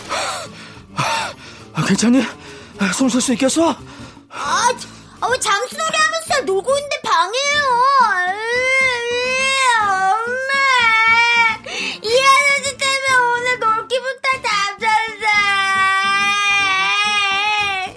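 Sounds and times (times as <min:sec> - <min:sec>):
speech: 0:01.8 - 0:04.1, 0:04.7 - 0:08.4
young child wailing and sobbing: 0:07.4 - 0:17.9.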